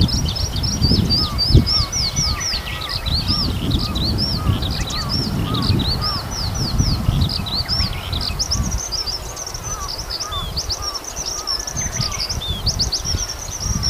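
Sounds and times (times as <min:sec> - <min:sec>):
Eurasian skylark sustained high chattering song: 0:00.0 - 0:13.8
wind rumble: 0:00.0 - 0:13.8.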